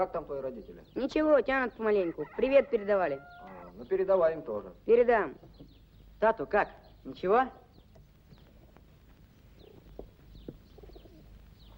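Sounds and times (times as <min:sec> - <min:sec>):
speech: 0:00.0 - 0:07.6
pigeons cooing at a dovecote: 0:09.6 - 0:11.7.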